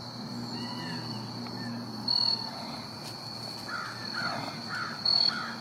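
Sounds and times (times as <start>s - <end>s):
wolf pack howling: 0.2s - 2.9s, 3.7s - 5.5s.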